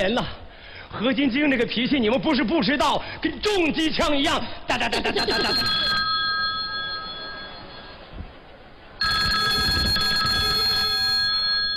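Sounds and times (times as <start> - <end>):
speech: 0.0 - 5.9
telephone ringing with electronic ringtone: 5.2 - 8.1, 9.0 - 11.7.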